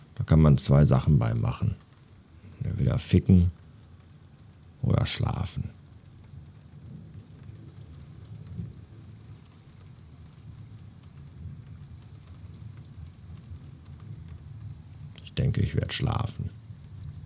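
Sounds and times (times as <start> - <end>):
steady rain hissing: 0.0 - 17.2
speech: 0.3 - 1.9, 2.6 - 3.6, 4.8 - 5.8, 15.4 - 16.6
deep rolling thunder rumbling: 5.4 - 17.2.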